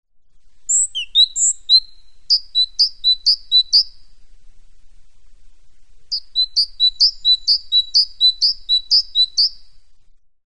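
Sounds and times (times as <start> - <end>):
great tit song: 0.7 - 4.2, 6.1 - 10.0.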